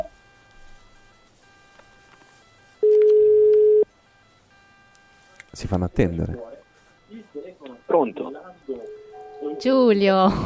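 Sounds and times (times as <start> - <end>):
telephone line ringing tone: 0.0 - 5.3, 6.4 - 10.1
speech: 5.6 - 6.5, 8.0 - 10.4.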